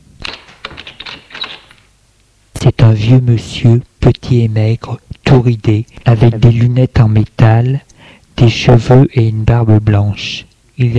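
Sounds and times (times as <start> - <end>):
apartment door latch and handle clicking and rattling in an old run-down building: 0.2 - 1.9
speech: 2.6 - 10.9.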